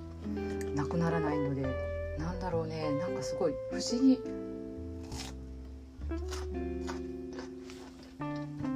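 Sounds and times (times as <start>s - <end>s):
speech: 0.8s - 4.5s
crunchy chewing of a firm hard CX peach: 5.0s - 5.5s, 6.1s - 8.6s.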